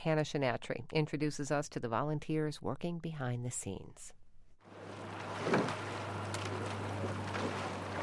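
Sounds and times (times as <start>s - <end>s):
speech: 0.0s - 4.2s, 4.8s - 5.9s
rowing oars pulling through river water before a race: 4.7s - 8.0s
steady low hum on open water: 4.7s - 8.0s.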